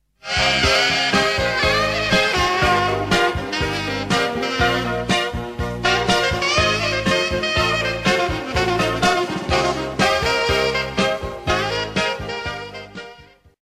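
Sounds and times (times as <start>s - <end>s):
pop saxophone: 0.2s - 13.6s.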